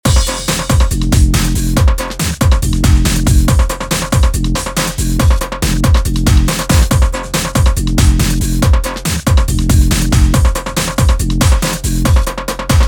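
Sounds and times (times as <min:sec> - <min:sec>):
drum break beat: 0:00.0 - 0:12.8.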